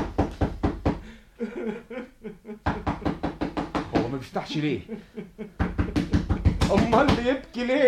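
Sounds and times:
knocking on the door of a lone hut in the desert: 0:00.0 - 0:01.0, 0:02.6 - 0:04.2, 0:05.6 - 0:07.4
laughter: 0:01.4 - 0:03.0, 0:04.6 - 0:06.1
speech: 0:04.2 - 0:05.1, 0:06.7 - 0:07.8.

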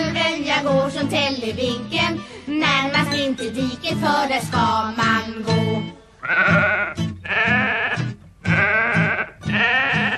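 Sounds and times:
speech: 0:00.6 - 0:06.8
sheep and lamb bleating on a farm: 0:06.2 - 0:10.1.

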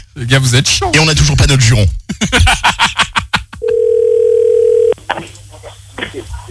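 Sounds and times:
speech: 0:00.2 - 0:02.9
laughter: 0:02.1 - 0:03.7
telephone tone of a phone being redialed: 0:03.6 - 0:05.0.

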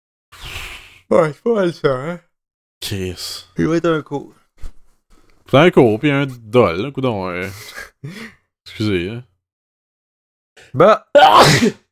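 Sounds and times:
speech: 0:01.1 - 0:04.4, 0:05.5 - 0:09.3, 0:10.6 - 0:11.8
person sneezing: 0:11.2 - 0:11.9.

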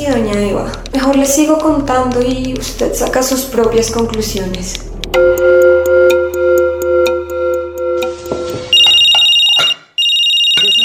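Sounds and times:
speech: 0:00.0 - 0:05.3
cellphone ringing with an incoming call: 0:05.2 - 0:10.8.

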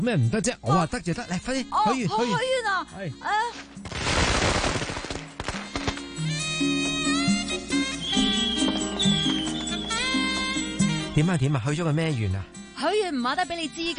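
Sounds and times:
speech: 0:00.0 - 0:03.8, 0:11.2 - 0:13.9
fireworks exploding: 0:03.8 - 0:10.7.

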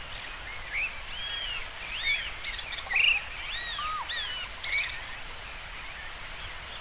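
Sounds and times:
shrill insect drone: 0:00.7 - 0:05.7
bird song of varied whistled notes: 0:00.8 - 0:05.0.

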